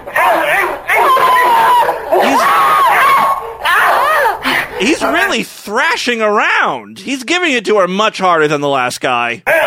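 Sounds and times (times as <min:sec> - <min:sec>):
woman's piercing high-pitched screams: 0:00.2 - 0:04.4
speech: 0:05.1 - 0:09.5.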